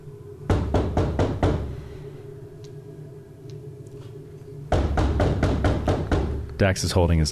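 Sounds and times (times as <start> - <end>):
low steady hum: 0.0 - 7.2
loud heavy knocking on a door: 0.5 - 1.7, 4.7 - 6.4
speech: 6.6 - 7.2.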